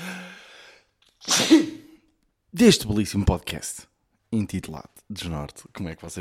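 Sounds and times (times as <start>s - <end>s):
loud sneeze: 1.2s - 2.0s
speech: 2.6s - 6.2s.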